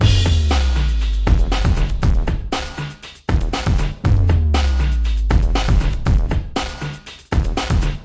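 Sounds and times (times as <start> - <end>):
big beat drum loops and breaks: 0.0 - 8.0.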